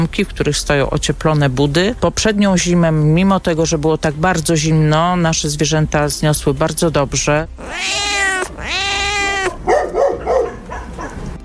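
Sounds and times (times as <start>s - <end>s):
speech: 0.0s - 8.8s
cats meowing at an animal shelter: 7.6s - 9.8s.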